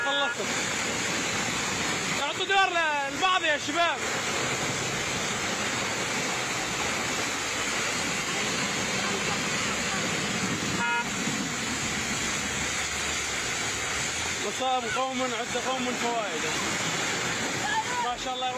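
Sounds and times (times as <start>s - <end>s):
short car horn toot: 0.0s - 0.5s, 10.7s - 11.2s
water gushing from a broken pipe: 0.0s - 18.5s
speech: 2.4s - 4.6s, 14.6s - 17.0s, 18.2s - 18.5s.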